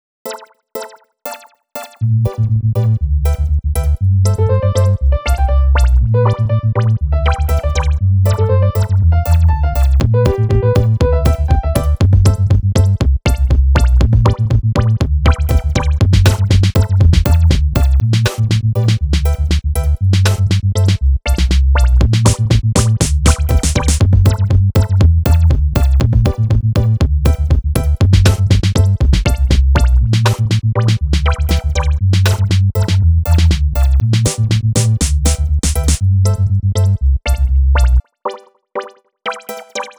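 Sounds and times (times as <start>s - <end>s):
background loop: 0.3s - 39.9s.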